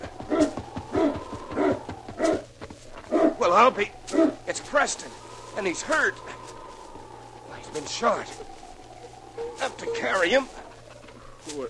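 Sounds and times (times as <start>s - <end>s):
sled dog team barking: 0.0s - 4.6s, 7.8s - 11.4s
speech: 3.4s - 6.4s, 7.7s - 8.5s, 9.6s - 10.6s, 11.4s - 11.6s.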